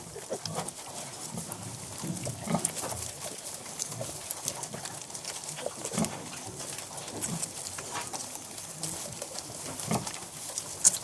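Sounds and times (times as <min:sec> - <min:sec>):
pigs suckling indoors with soft low grunts: 0:00.0 - 0:11.0
rustling and clicking noise: 0:00.0 - 0:11.0.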